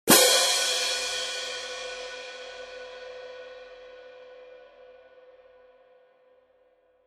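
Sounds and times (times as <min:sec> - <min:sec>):
18in symphonic German tone pair cymbals: 0:00.1 - 0:05.1.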